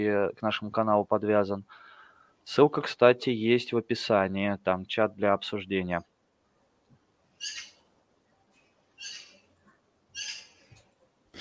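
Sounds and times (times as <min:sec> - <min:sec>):
speech: 0:00.0 - 0:06.1, 0:07.4 - 0:07.7
quiet hiss: 0:00.0 - 0:11.3
bird calling high-pitched outside the window in summer: 0:07.4 - 0:07.8, 0:09.0 - 0:09.4, 0:10.1 - 0:10.6.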